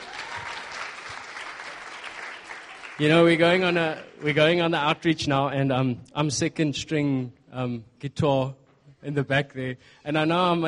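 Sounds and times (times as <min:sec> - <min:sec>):
seated audience applauding: 0:00.0 - 0:04.8
speech: 0:03.0 - 0:10.6.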